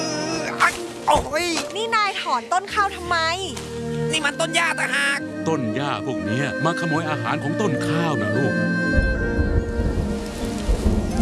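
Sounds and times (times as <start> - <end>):
speech: 1.1 - 9.1
rain beginning to fall over a rice field: 9.0 - 11.1.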